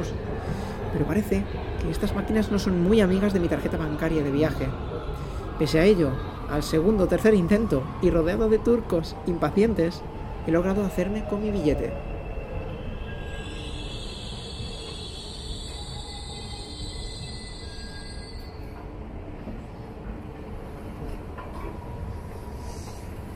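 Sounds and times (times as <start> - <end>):
urban electric multiple-unit commuter train rumbling on the rails: 0.0 - 23.3
speech: 0.9 - 12.1
metallic squeal of commuter train: 12.8 - 18.8.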